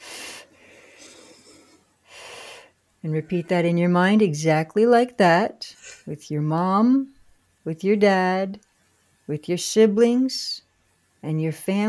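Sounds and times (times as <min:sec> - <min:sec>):
person breathing in deeply during a guided meditation: 0:00.0 - 0:02.7
speech: 0:03.0 - 0:08.7, 0:09.3 - 0:10.6, 0:11.2 - 0:11.8.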